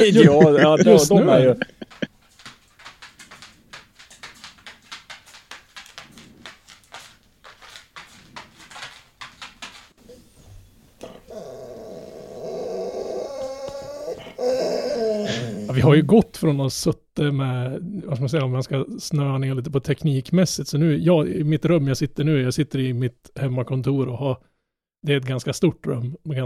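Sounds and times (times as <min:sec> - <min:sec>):
speech: 0:00.0 - 0:01.8, 0:15.8 - 0:26.4
laughter: 0:00.0 - 0:02.1
dogs growling and whimpering: 0:10.0 - 0:15.9
dogs whining and yelping: 0:11.1 - 0:15.7.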